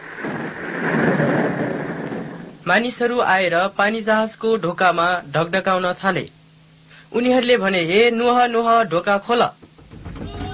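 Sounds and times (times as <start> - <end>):
very heavy rain pouring down: 0.0 - 3.0
speech: 2.7 - 6.4, 7.1 - 9.6.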